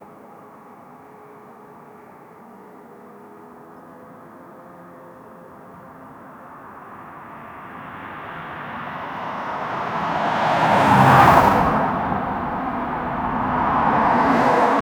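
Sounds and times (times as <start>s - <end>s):
car driving fast: 5.7s - 14.8s.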